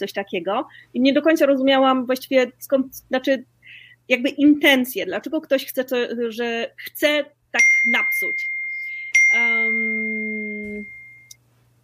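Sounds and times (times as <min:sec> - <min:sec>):
speech: 0:00.0 - 0:03.5, 0:04.1 - 0:08.5, 0:09.3 - 0:10.1
single church bell strike ringing: 0:07.6 - 0:11.4.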